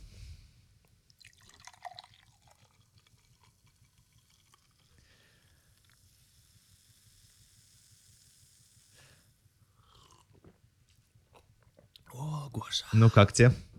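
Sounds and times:
fizzy crackling of soda: 0.9s - 10.2s
soda poured into a glass: 1.0s - 10.3s
speech: 12.6s - 13.7s.

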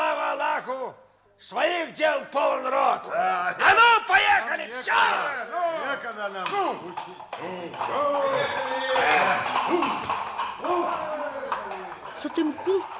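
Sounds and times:
speech: 1.4s - 11.2s, 12.2s - 12.9s
hooves of several horses clopping as riders move off: 5.7s - 12.9s.

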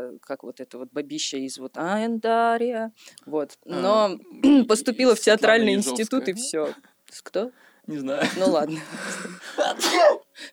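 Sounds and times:
speech: 0.2s - 10.5s
person sneezing: 9.6s - 10.3s.

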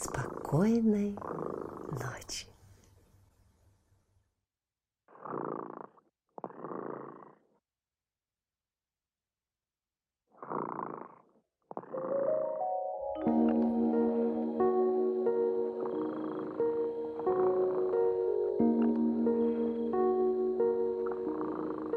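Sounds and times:
sleeping cat purring: 0.0s - 2.5s, 5.1s - 7.6s, 10.4s - 12.6s, 13.3s - 21.9s
speech: 0.5s - 2.5s.

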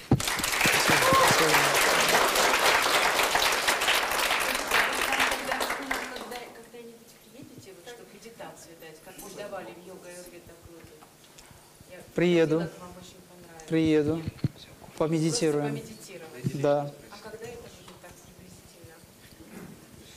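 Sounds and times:
audience applause thanking the lecturer at a lecture: 0.0s - 6.5s
speech: 12.2s - 12.8s, 13.7s - 17.0s.

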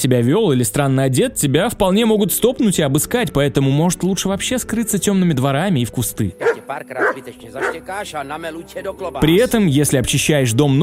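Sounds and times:
speech: 0.0s - 10.8s
dog barking: 6.4s - 7.8s.

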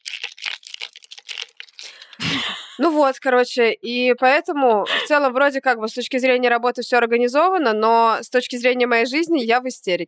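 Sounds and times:
ice cubes rattling in a shaken plastic iced latte cup: 0.0s - 2.2s
speech: 2.3s - 10.0s.

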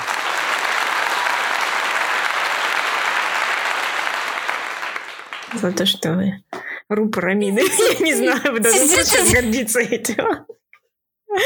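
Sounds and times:
steady dense crowd applause: 0.0s - 5.6s
speech: 5.6s - 10.6s
laughter: 7.5s - 9.6s.

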